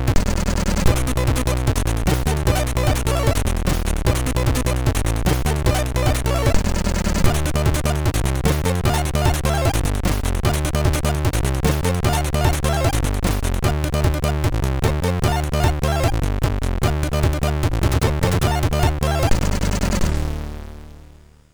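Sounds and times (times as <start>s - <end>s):
techno music on MOS6581R3 chip: 0.2s - 21.1s.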